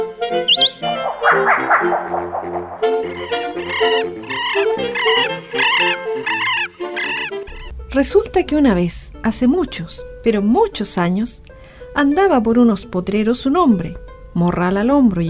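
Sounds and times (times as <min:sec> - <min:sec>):
wild bird calls: 0:00.3 - 0:07.4
speech: 0:08.0 - 0:15.2.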